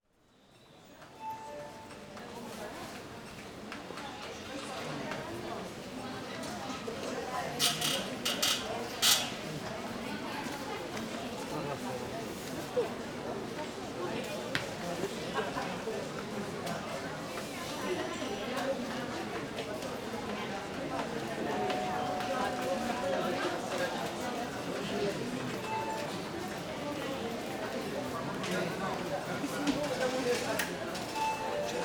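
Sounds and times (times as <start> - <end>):
murmur of people in a sanatorium entrance hall: 0.5 - 31.8
call bells ringing in a sanatorium entrance hall: 1.2 - 2.5, 21.5 - 24.2, 31.2 - 31.8.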